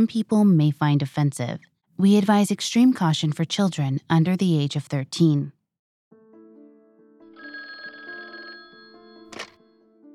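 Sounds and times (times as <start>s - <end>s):
speech: 0.0s - 5.6s
old-fashioned telephone bell ringing: 7.3s - 9.9s
telephone receiver picked up with a sharp clack: 9.3s - 9.6s.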